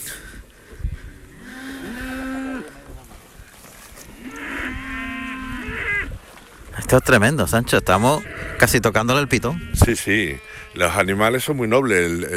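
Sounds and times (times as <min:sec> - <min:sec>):
faint outdoor background: 0:00.0 - 0:12.3
fighting-breed cow mooing while eating feed: 0:01.3 - 0:03.0, 0:04.1 - 0:06.2, 0:07.9 - 0:11.0
speech: 0:06.9 - 0:12.3.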